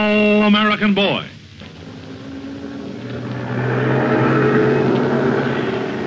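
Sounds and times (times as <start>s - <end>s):
speech: 0.0s - 1.4s
heavy army truck engine rumbling and revving while backing up: 1.6s - 6.0s.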